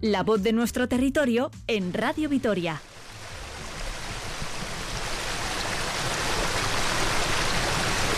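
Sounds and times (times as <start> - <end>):
speech: 0.0 - 2.9
stream under beech trees rushing over stones: 2.8 - 8.1.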